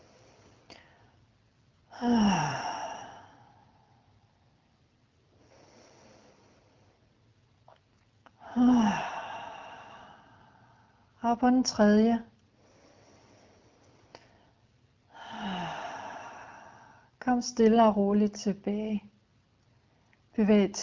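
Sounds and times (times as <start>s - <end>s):
slow deep breaths in and out: 0.0s - 4.6s, 5.2s - 7.3s, 8.3s - 11.2s, 12.4s - 17.2s
speech: 2.0s - 2.6s, 11.3s - 12.3s, 17.4s - 19.1s, 20.4s - 20.8s.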